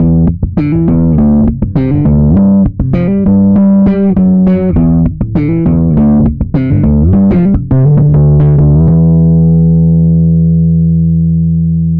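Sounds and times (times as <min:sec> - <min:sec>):
overdriven slap bass: 0:00.0 - 0:11.9.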